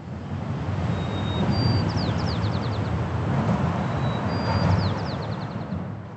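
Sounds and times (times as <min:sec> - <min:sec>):
heavy traffic roar on the Golden Gate Bridge: 0:00.0 - 0:06.1
sparrow singing thin whistles and quick trills: 0:00.9 - 0:03.0, 0:03.8 - 0:05.7.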